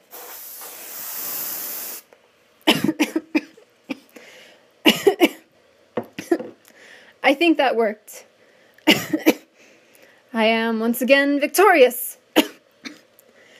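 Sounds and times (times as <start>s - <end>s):
aerosol deodorant spraying: 0.0s - 2.1s
person coughing: 2.7s - 4.1s, 4.9s - 5.4s, 6.2s - 6.5s, 8.9s - 9.5s, 12.4s - 13.0s
speech: 7.3s - 8.3s, 10.4s - 12.1s.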